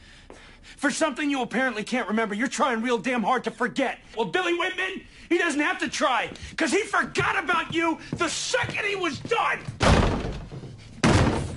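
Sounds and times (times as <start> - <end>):
speech: 0.8 - 10.1
door slamming shut: 9.7 - 11.5.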